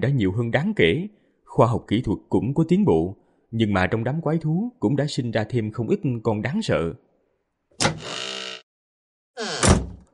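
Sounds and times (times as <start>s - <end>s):
speech: 0.0s - 7.1s, 7.8s - 8.2s
front door of a house creaking open: 7.8s - 8.7s, 9.4s - 10.1s.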